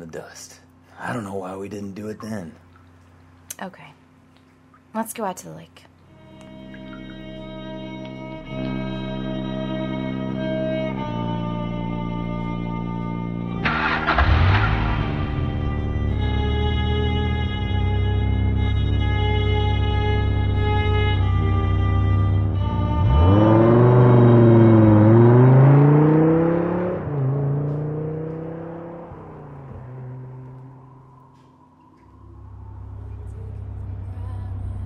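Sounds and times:
speech: 0:00.1 - 0:02.7, 0:03.6 - 0:04.0, 0:04.9 - 0:05.9
steady effects-heavy musical drone: 0:06.1 - 0:34.8
1967 Dodge Charger engine starting and revving: 0:13.6 - 0:31.5.

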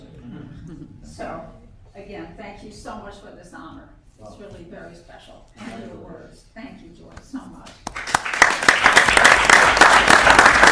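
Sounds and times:
speech: 0:00.7 - 0:08.1
sharper individual claps: 0:07.6 - 0:10.7
room full of people applauding at a city council: 0:07.8 - 0:10.7.

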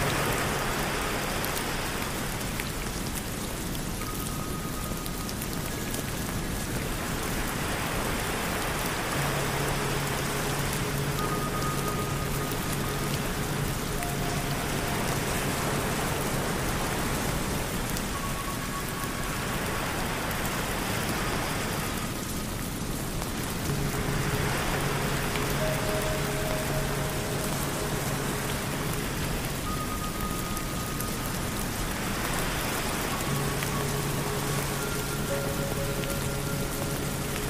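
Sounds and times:
ocean waves surging in Hawaii: 0:00.0 - 0:03.2, 0:06.8 - 0:37.4
steady dense rain hissing in Hawaii: 0:00.0 - 0:37.4
Tibetan singing bowls ringing with low sustained tones: 0:09.1 - 0:16.8, 0:23.7 - 0:37.4
bright bell-like notes: 0:09.1 - 0:20.0, 0:23.6 - 0:37.4.

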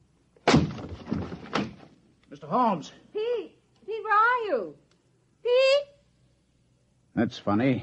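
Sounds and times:
door locked from the inside forced open with a loud crash: 0:00.4 - 0:01.9
heavy thud: 0:00.4 - 0:01.9
speech: 0:02.5 - 0:03.0, 0:04.4 - 0:04.8, 0:07.2 - 0:07.8.

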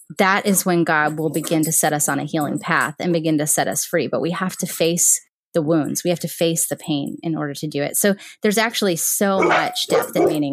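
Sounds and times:
speech: 0:00.1 - 0:10.5
dog barking: 0:09.4 - 0:10.4.

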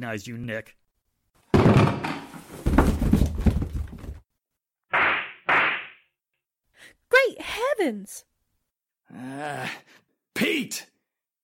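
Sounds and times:
speech: 0:00.0 - 0:00.8, 0:07.2 - 0:08.3, 0:09.1 - 0:10.9
wooden crate set down scraping and thumping: 0:01.6 - 0:04.2.

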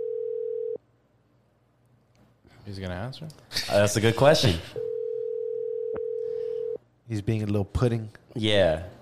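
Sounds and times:
phone call ringing tone electronic beep: 0:00.0 - 0:00.8, 0:04.8 - 0:06.8
speech: 0:02.7 - 0:04.8, 0:07.1 - 0:09.0.

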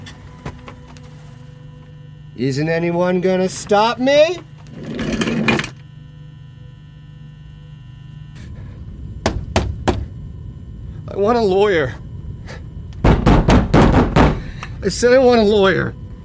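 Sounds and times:
steady low hum: 0:00.0 - 0:16.2
speech: 0:02.4 - 0:04.5, 0:11.2 - 0:12.0, 0:14.8 - 0:16.0
small office chair wheels rolling over a hard floor: 0:04.6 - 0:05.8.

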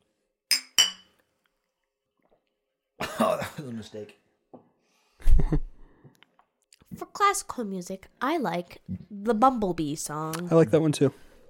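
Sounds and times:
glasses clinking in a toast: 0:00.5 - 0:01.2
speech: 0:03.2 - 0:04.3, 0:05.4 - 0:05.7, 0:07.2 - 0:11.3.

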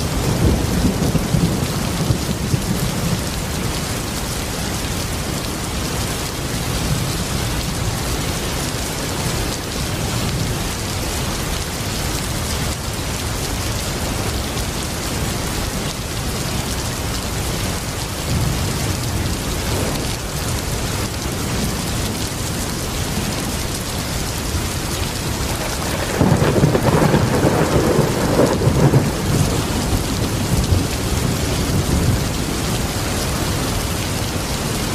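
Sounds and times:
low rumbles of thunder: 0:00.0 - 0:04.0, 0:25.1 - 0:34.9
heavy rain pouring down: 0:00.0 - 0:34.9.

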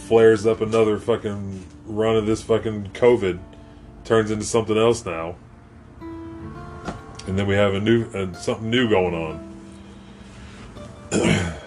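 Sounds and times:
speech: 0:00.1 - 0:03.5, 0:04.1 - 0:05.4, 0:07.3 - 0:09.5, 0:11.1 - 0:11.6
single loud rough phlegmy cough: 0:11.1 - 0:11.6.

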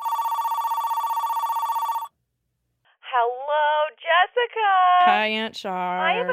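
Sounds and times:
warbling electronic telephone ringback tone: 0:00.0 - 0:02.1
speech: 0:04.4 - 0:06.3.

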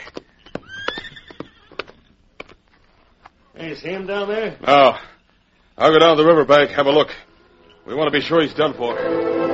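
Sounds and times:
horse hooves clopping on hard ground: 0:00.0 - 0:03.0
horse giving a short high whinny: 0:00.4 - 0:02.1
speech: 0:03.6 - 0:05.1, 0:05.8 - 0:07.2, 0:07.9 - 0:09.4.

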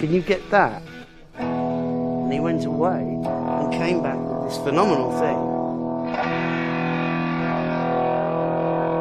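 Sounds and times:
speech: 0:00.0 - 0:01.5, 0:02.3 - 0:05.5, 0:06.1 - 0:06.6
electric guitar chord through a distortion pedal: 0:00.0 - 0:09.0.

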